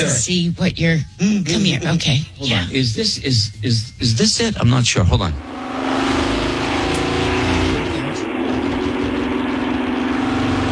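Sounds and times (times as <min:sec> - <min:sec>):
speech: 0:00.0 - 0:05.6
high-revving race car engine roaring on a speedway ride-along lap: 0:05.3 - 0:10.7.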